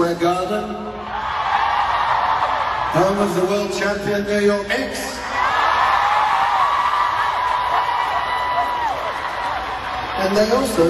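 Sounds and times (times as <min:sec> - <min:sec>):
speech: 0:00.1 - 0:01.0, 0:03.0 - 0:05.2, 0:10.2 - 0:10.8
huge crowd of concert fans screaming: 0:01.0 - 0:03.4, 0:05.1 - 0:10.8.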